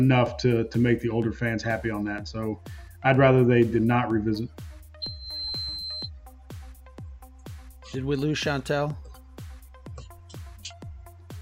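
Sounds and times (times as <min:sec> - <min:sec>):
speech: 0:00.0 - 0:04.7, 0:07.9 - 0:09.1
high-pitched electronic beep: 0:05.0 - 0:06.1.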